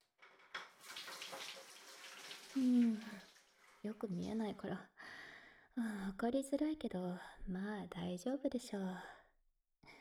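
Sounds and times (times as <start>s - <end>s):
hot water poured over hair: 0.6s - 3.9s
speech: 2.6s - 4.9s, 5.8s - 9.2s.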